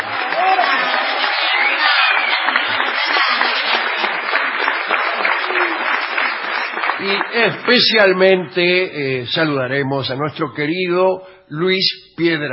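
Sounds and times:
faint crowd voices: 0.0s - 8.2s
large audience clapping in an ovation: 0.0s - 8.8s
speech: 7.1s - 12.5s.

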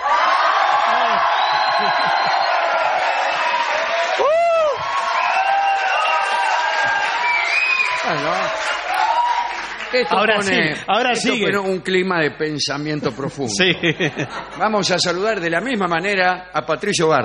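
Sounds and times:
small group of people shouting and whooping in studio: 0.0s - 10.7s
laughter: 1.0s - 2.8s, 10.0s - 11.7s, 13.0s - 15.1s
speech: 9.9s - 17.2s.

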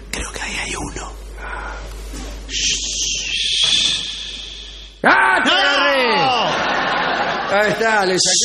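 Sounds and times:
soft voices: 0.1s - 5.0s
laughter: 6.2s - 8.4s
speech: 7.5s - 8.4s.

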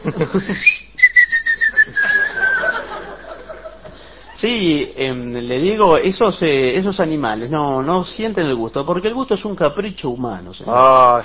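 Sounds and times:
laughter: 0.0s - 0.7s, 1.7s - 4.1s
speech: 0.1s - 0.8s, 4.4s - 11.2s
person whistling a long high tone: 0.5s - 2.8s.

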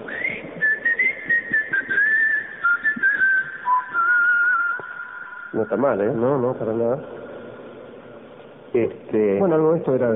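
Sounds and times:
person whistling a signal call to gather friends: 0.0s - 5.7s
speech: 5.6s - 7.2s, 8.7s - 10.1s.

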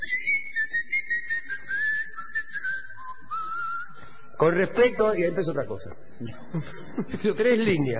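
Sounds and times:
person whistling a wavering gliding tune: 0.0s - 4.4s
speech: 4.4s - 7.9s
laughter: 6.2s - 7.9s.

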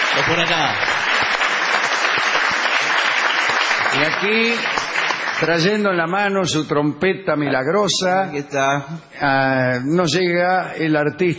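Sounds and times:
audience ovation at a live show in a small warehouse venue: 0.0s - 6.3s
speech: 0.2s - 1.0s, 3.9s - 4.8s, 5.4s - 11.3s.

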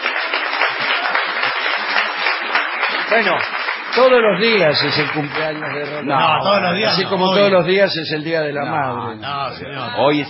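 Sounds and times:
crowd applauding for a birthday: 0.0s - 7.7s
speech: 3.1s - 10.2s.

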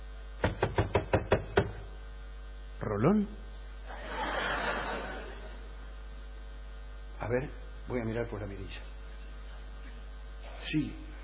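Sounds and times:
firm knocking on a door: 0.4s - 1.8s
speech: 2.8s - 3.4s, 7.3s - 8.9s, 10.7s - 11.1s
laughter: 3.9s - 5.8s.

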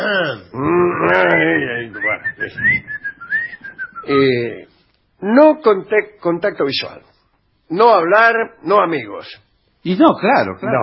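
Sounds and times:
speech: 0.0s - 3.0s, 4.0s - 4.6s, 5.2s - 7.1s, 7.7s - 10.8s
drawn-out voiced moan or hum: 0.0s - 3.5s
person whistling a short wavering tune: 2.3s - 4.1s.

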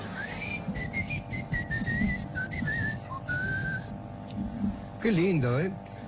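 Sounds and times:
person whistling high-pitched tone imitating ear ringing: 0.0s - 3.9s
speech: 5.0s - 5.9s.

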